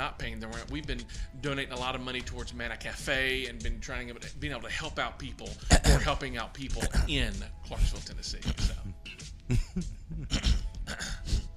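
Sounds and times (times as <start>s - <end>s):
speech: 0.1s - 10.6s
person clearing a tickle from their throat: 5.6s - 6.2s, 6.8s - 7.2s, 8.4s - 11.5s.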